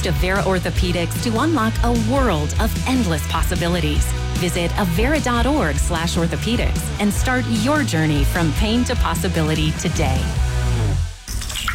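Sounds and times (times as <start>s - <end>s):
speech: 0.0s - 10.5s
water dripping through a leaking flat roof: 11.2s - 11.7s.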